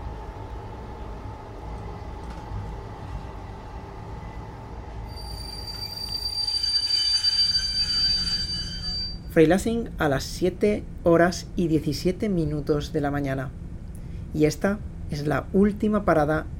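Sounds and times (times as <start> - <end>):
passenger train running on rails near Freilassing: 0.0 - 9.3
thin high train wheel squeals: 5.1 - 9.3
speech: 9.4 - 13.6, 14.3 - 16.5.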